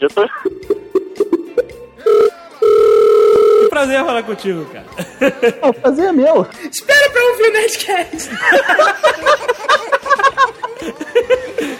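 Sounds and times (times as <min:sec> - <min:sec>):
speech: 0:00.0 - 0:00.8, 0:03.8 - 0:09.8
Skype call ringtone from a computer: 0:01.2 - 0:03.8
laughter: 0:04.9 - 0:06.0, 0:08.1 - 0:11.7.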